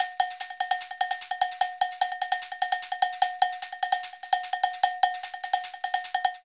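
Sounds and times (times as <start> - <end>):
caxixi in latin jazz at 149 bpm: 0.0 - 6.4
cowbell in latin jazz at 149 bpm: 0.0 - 6.4.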